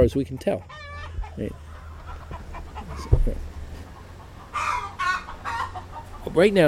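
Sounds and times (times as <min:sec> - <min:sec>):
chickens clucking: 0:00.0 - 0:06.6.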